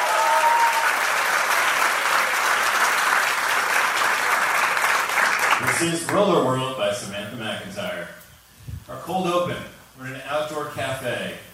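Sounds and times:
faint cheer or whistle from the audience: 0.0 - 1.0
crowd applause: 0.0 - 6.4
speech: 5.8 - 8.2, 8.9 - 11.5.

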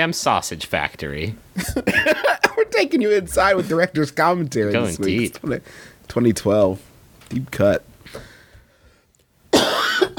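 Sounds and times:
speech: 0.0 - 8.3
person coughing: 9.5 - 10.1.

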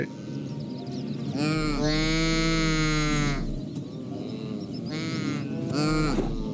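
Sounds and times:
saiga antelope calling with nasal brassy bleats: 1.3 - 6.5.

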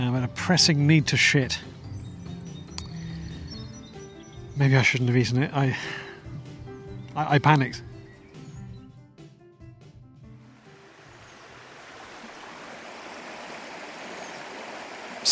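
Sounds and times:
speech: 0.3 - 1.8, 4.6 - 6.1, 7.2 - 7.9
small fast-running brook rushing and gurgling: 10.5 - 15.2.

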